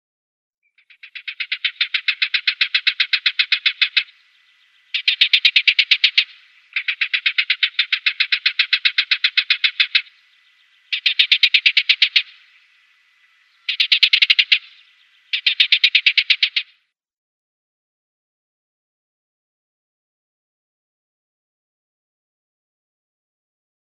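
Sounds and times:
Barred Warbler calls: 0:00.7 - 0:16.9.

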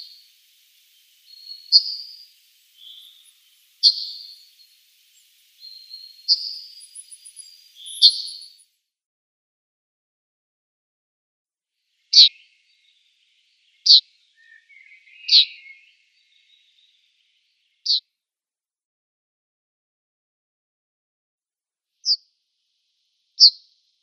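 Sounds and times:
Yellowhammer ticking calls: 0:00.0 - 0:08.6, 0:13.7 - 0:17.0
soft, lower Yellowhammer twittering: 0:00.0 - 0:08.7, 0:12.0 - 0:18.0.

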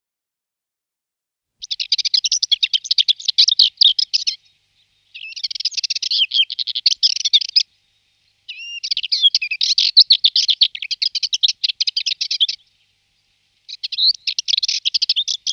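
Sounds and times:
subalpine warbler song of dry chattering notes: 0:01.6 - 0:15.5.

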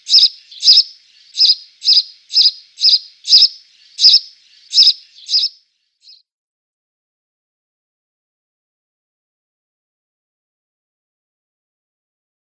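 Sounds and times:
house sparrow song of bright double-noted chirps: 0:00.0 - 0:06.3.

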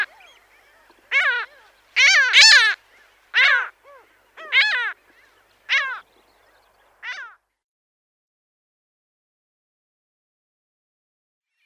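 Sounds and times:
Mediterranean gull giving loud nasal down-curving calls: 0:00.0 - 0:06.1, 0:07.0 - 0:07.4.

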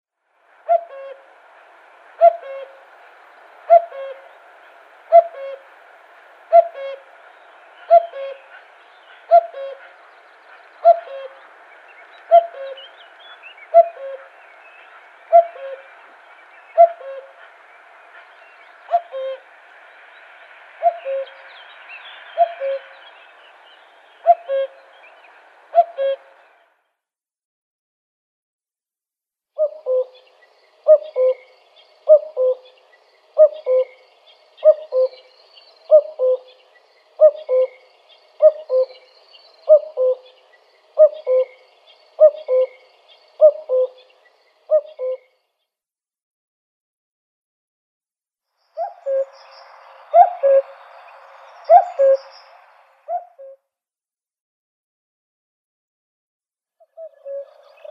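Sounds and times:
male common cuckoo display calling: 0:00.6 - 0:01.3, 0:02.2 - 0:02.9, 0:03.6 - 0:05.8, 0:06.4 - 0:17.6, 0:18.2 - 0:19.5, 0:20.8 - 0:23.3, 0:24.2 - 0:26.4, 0:29.6 - 0:45.3, 0:48.8 - 0:53.6, 0:56.8 - 0:57.8.

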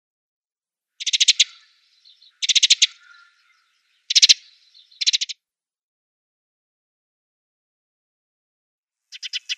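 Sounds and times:
Eurasian tree sparrow rattling chatters: 0:01.0 - 0:05.4, 0:09.1 - 0:09.5.

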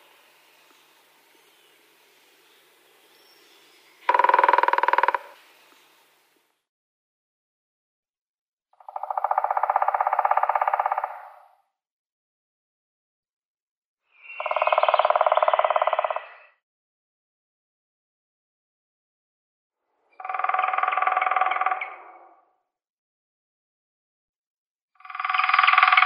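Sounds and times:
grey-headed woodpecker drumming: 0:04.0 - 0:05.4, 0:08.9 - 0:11.2, 0:14.5 - 0:16.2, 0:20.2 - 0:21.8, 0:25.0 - 0:26.0.

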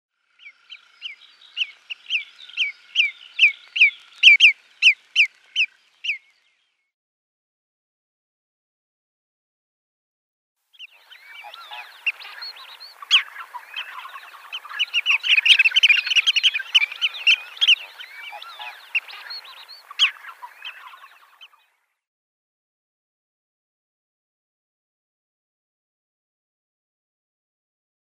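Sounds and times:
Marsh Sandpiper call: 0:01.6 - 0:06.2, 0:10.8 - 0:21.6.

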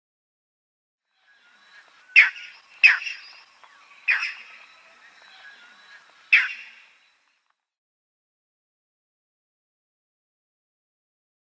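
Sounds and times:
Striated Heron flight call: 0:01.2 - 0:07.0.

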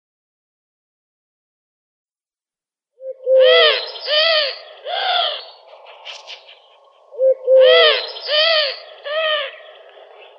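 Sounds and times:
Eurasian collared dove three-note coos: 0:03.0 - 0:10.3.

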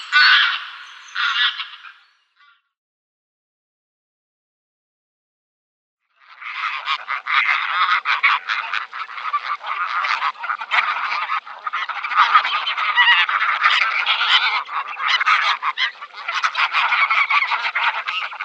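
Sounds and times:
greylag goose honking: 0:00.0 - 0:02.0, 0:06.4 - 0:18.4.

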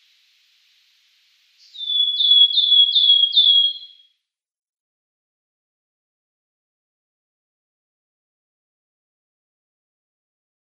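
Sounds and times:
wood warbler song: 0:01.5 - 0:04.2.

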